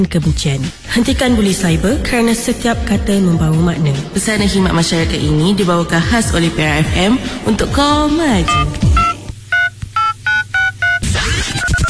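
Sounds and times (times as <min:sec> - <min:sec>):
speech: 0:00.0 - 0:09.0
dense wash of busy electronic noise: 0:03.5 - 0:11.8
faint beeping: 0:06.3 - 0:11.0
mobile phone keypad tones: 0:08.5 - 0:11.0.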